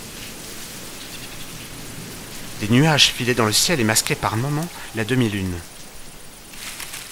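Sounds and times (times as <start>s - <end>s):
heavy rain pouring down: 0.0s - 7.1s
speech: 2.6s - 5.7s.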